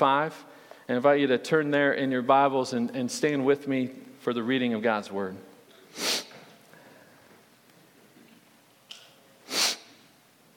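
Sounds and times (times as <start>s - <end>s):
speech: 0.0s - 6.1s
sharp sniffles through the nose: 5.9s - 6.5s, 9.5s - 10.0s.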